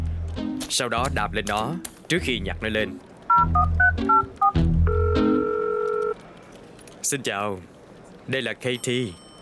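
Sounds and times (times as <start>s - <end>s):
speech: 0.7s - 4.2s, 7.1s - 7.7s, 8.3s - 9.2s
touch-tone dialing beeps for a phone call: 3.3s - 6.2s.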